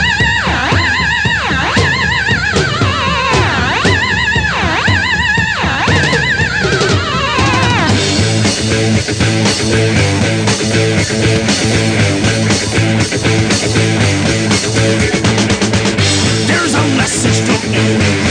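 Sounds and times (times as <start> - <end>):
wailing swooping squeals: 0.0 - 8.1
1970s pop rock track with driving full-band groove: 0.0 - 18.3.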